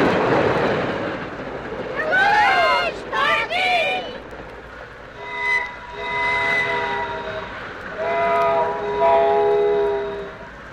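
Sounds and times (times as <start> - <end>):
train rushing past at about 80 miles an hour: 0.0 - 10.7
steady multi-toned train whistle: 5.2 - 10.6.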